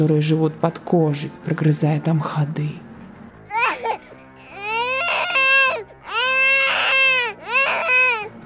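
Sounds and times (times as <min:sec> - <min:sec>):
speech: 0:00.0 - 0:02.8
young child crying in wavering wails: 0:03.5 - 0:08.3.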